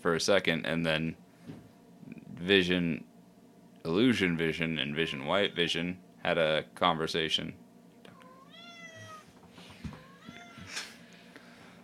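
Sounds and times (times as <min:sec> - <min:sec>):
speech: 0:00.0 - 0:01.2, 0:02.4 - 0:03.1, 0:03.8 - 0:07.6
cat meowing: 0:04.9 - 0:05.8, 0:08.1 - 0:09.3, 0:10.0 - 0:10.7.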